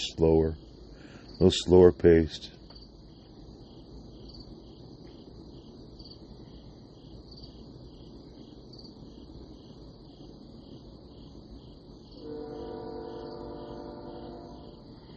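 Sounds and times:
crickets chirping: 0.0s - 15.1s
speech: 0.1s - 0.7s, 1.4s - 2.6s
train rumbling past: 12.0s - 15.1s
sustained tonal whine: 12.1s - 15.1s.

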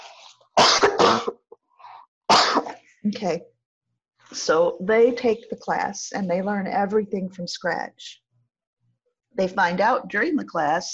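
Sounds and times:
person coughing harshly: 0.6s - 1.5s, 2.3s - 2.8s
speech: 1.1s - 1.4s, 3.0s - 3.6s, 4.3s - 8.2s, 9.4s - 10.9s.

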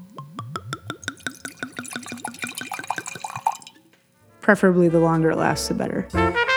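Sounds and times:
wine glugging out of a bottle into a glass: 0.0s - 3.9s
speech: 4.5s - 6.4s.

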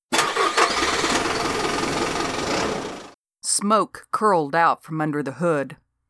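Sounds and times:
car engine cranking and starting: 0.1s - 3.2s
speech: 3.6s - 5.8s.

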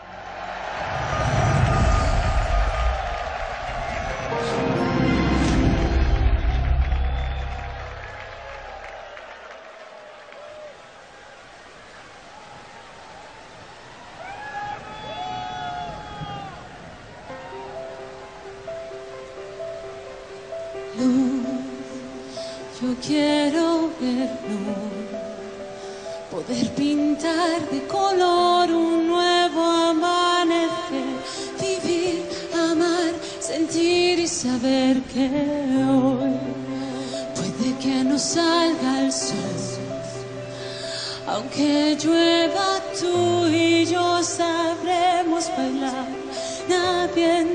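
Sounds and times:
crowd roaring and cheering at a live concert: 0.0s - 19.8s
concert music with sustained melodic tones: 3.8s - 8.9s, 17.2s - 47.5s
person singing at a live concert: 4.1s - 6.3s, 20.8s - 47.5s
speech: 37.8s - 39.6s, 41.3s - 44.0s.

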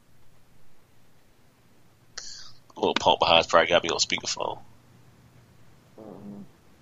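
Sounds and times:
faint hiss: 0.0s - 6.7s
speech: 2.8s - 4.7s
fart: 6.0s - 6.6s.

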